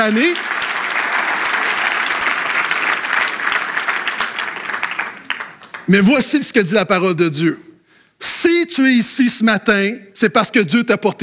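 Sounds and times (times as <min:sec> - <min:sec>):
speech: 0:00.0 - 0:00.5, 0:05.9 - 0:11.2
audience applauding: 0:00.0 - 0:06.3.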